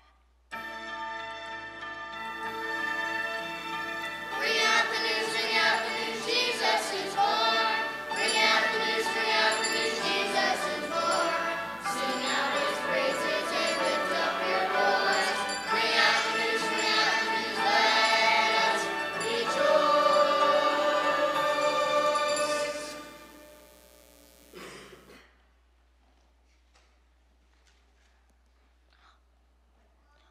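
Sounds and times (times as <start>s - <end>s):
bells rung by a bell ringer: 0.6s - 23.7s.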